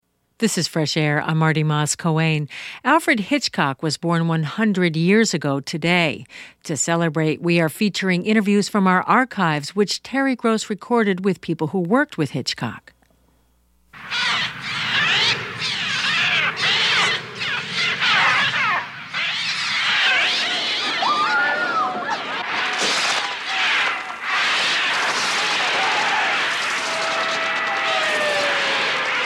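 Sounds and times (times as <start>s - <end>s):
speech: 0.4s - 12.9s
flock of birds shrieking and screeching in a film soundtrack: 14.0s - 29.2s.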